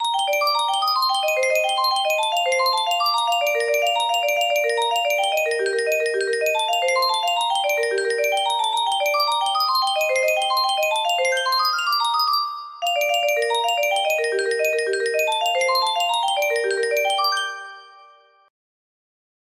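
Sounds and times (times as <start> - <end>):
arpeggio melody: 0.0 - 18.5.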